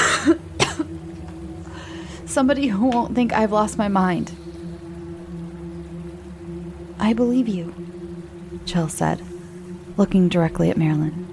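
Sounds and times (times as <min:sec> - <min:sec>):
woman coughing: 0:00.0 - 0:00.9
quiet breathing: 0:01.6 - 0:02.4
speech: 0:02.3 - 0:04.4, 0:07.1 - 0:08.0, 0:08.6 - 0:09.3, 0:10.0 - 0:11.3.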